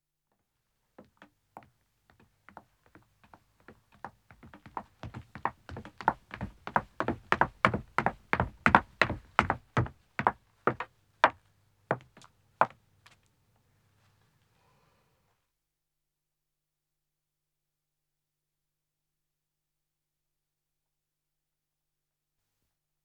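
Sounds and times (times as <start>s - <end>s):
footsteps descending wooden stairs: 4.4s - 11.4s.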